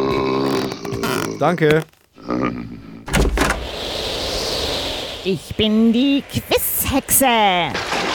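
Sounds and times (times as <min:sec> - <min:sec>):
door creaking open: 0:00.0 - 0:04.3
speech: 0:01.4 - 0:03.5, 0:05.2 - 0:08.0
door latch and handle clunks: 0:03.0 - 0:03.9.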